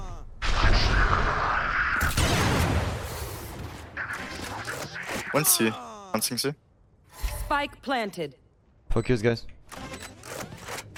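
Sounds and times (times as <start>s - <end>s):
grenade explosion in a video game: 0.4s - 3.8s
speech: 5.4s - 6.6s, 7.5s - 9.9s.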